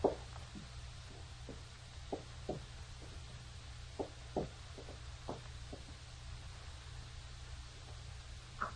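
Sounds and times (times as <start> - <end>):
cane tapping along a hallway: 0.0 - 3.2, 4.0 - 6.0
slow footsteps along a hallway: 0.0 - 6.9
low steady hum: 0.0 - 8.7.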